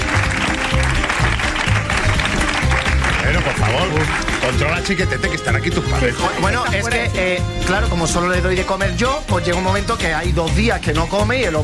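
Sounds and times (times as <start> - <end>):
audience applauding: 0.0 - 7.0
speech: 3.8 - 11.6.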